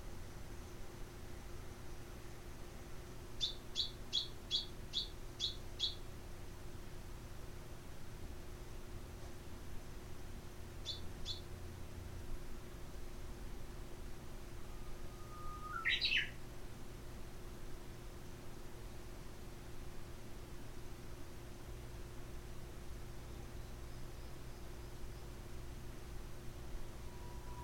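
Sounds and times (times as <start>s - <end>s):
faint constant hum: 0.0s - 27.6s
Japanese bush warbler whistled song: 3.4s - 6.0s, 10.8s - 11.4s, 14.6s - 16.4s, 27.0s - 27.6s.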